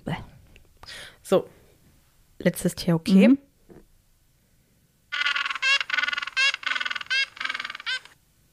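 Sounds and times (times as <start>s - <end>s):
speech: 1.3s - 1.6s, 2.4s - 3.5s
penguin braying call: 5.1s - 8.2s.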